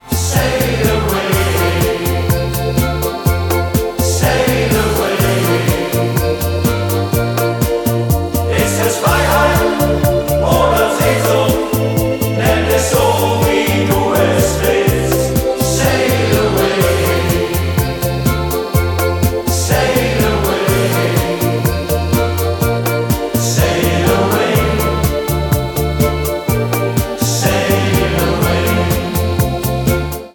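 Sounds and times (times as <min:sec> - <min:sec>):
shanty choir singing: 0:00.0 - 0:30.3.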